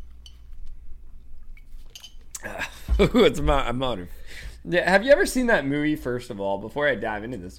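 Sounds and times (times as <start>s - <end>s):
glasses clinking in a toast: 1.9s - 2.4s
speech: 2.4s - 7.5s.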